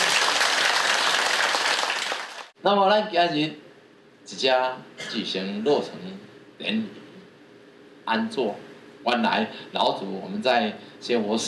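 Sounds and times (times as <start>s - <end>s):
applause from a gathering at a temple inauguration ceremony: 0.0s - 2.6s
speech: 2.6s - 3.6s, 4.3s - 7.0s, 8.1s - 11.4s.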